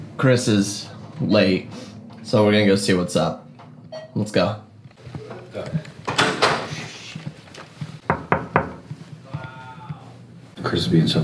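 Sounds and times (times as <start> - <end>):
speech: 0.2 - 3.4, 4.2 - 4.6, 10.7 - 11.2
rustling movement: 4.8 - 10.6
sharp knocks on a door: 8.0 - 9.0.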